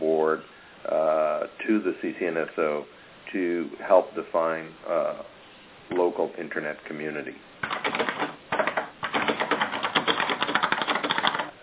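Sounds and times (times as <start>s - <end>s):
speech: 0.2s - 8.2s
forceful keyboard typing on a call: 7.6s - 11.6s.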